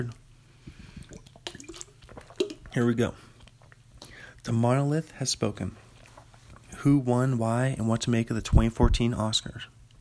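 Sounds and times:
speech: 0.0s - 0.2s, 2.8s - 3.3s, 4.4s - 5.8s, 6.8s - 9.7s
soft gulp: 0.7s - 4.3s
person sipping water: 0.7s - 4.4s
small slurps and drips of water: 0.9s - 4.5s.

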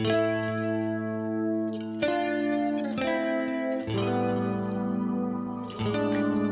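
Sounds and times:
heavily effected slightly distorted guitar playing sustained ringing chords: 0.0s - 6.5s.

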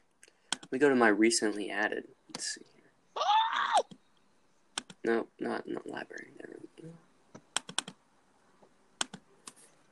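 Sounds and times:
clicking keys on a MacBook keyboard: 0.5s - 0.7s, 4.8s - 5.0s, 7.4s - 8.0s, 9.0s - 9.6s
speech: 0.7s - 2.8s, 5.0s - 7.1s.

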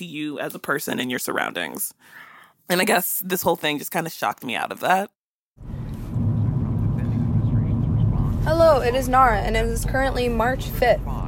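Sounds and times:
speech: 0.0s - 5.7s, 8.4s - 11.2s
road noise inside a moving car: 5.6s - 11.2s.

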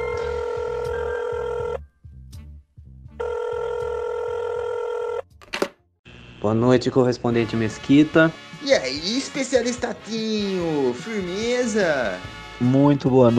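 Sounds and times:
telephone ringing as a call is placed: 0.0s - 1.8s, 3.2s - 5.2s
speech: 6.4s - 13.3s.

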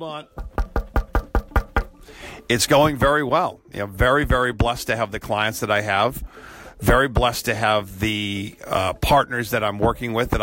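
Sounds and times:
speech: 0.0s - 0.5s, 2.0s - 10.4s
knuckles knocking on wood: 0.3s - 2.0s.

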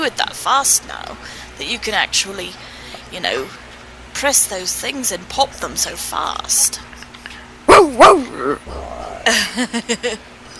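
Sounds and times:
speech: 0.0s - 3.6s, 4.2s - 7.0s, 7.9s - 10.3s
dog barking, whining yelps and short clipped yips: 7.7s - 8.7s.

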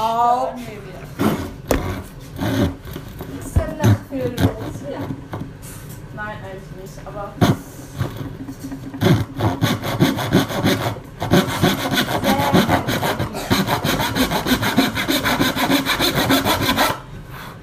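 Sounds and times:
hand saw cutting wood in rapid back-and-forth strokes: 1.2s - 5.2s, 8.9s - 17.1s.

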